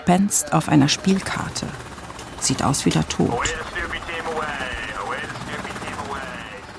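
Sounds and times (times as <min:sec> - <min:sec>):
speech: 0:00.0 - 0:03.9
naval military helicopter rotor spinning up for takeoff from a ship: 0:00.7 - 0:06.7
naval military helicopter turbine engine whine: 0:00.9 - 0:06.7.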